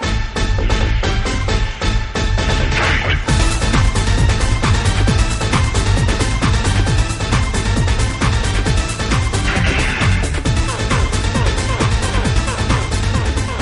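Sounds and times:
movie opening theme song with driving beat and heavy bass: 0.0s - 13.5s.

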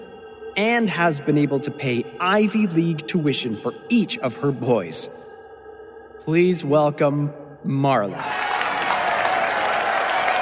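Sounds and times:
speech: 0.6s - 5.4s, 6.3s - 8.4s
faint cheers: 8.2s - 10.4s
sizable audience applause: 8.2s - 10.4s.

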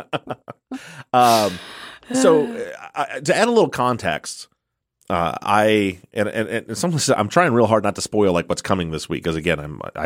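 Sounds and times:
speech: 0.0s - 4.5s, 5.1s - 10.0s
person yawning: 0.8s - 2.8s.

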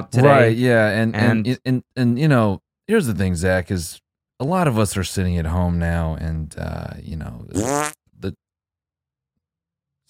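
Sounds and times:
speech: 0.0s - 8.4s
buzzy fart sound effect from conference-call extension: 7.5s - 8.0s.

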